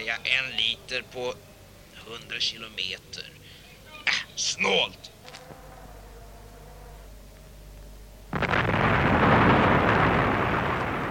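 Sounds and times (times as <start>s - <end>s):
speech: 0.1s - 1.5s, 2.1s - 3.4s, 4.1s - 5.2s
dense roaring rumble: 7.1s - 11.0s
plane exploding with a loud blast: 8.3s - 11.0s.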